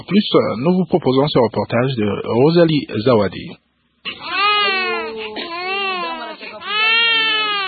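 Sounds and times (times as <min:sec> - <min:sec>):
speech: 0:00.0 - 0:04.3
infant crying in long wavering wails in a pediatric hospital ward in Goma: 0:04.1 - 0:07.6.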